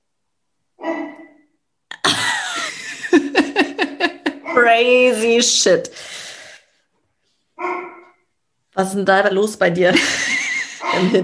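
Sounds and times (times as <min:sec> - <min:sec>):
dog barking: 0:00.8 - 0:01.4, 0:07.6 - 0:08.2
laughter: 0:02.0 - 0:04.6, 0:09.9 - 0:11.2
speech: 0:04.6 - 0:06.2, 0:08.8 - 0:10.2, 0:10.9 - 0:11.2.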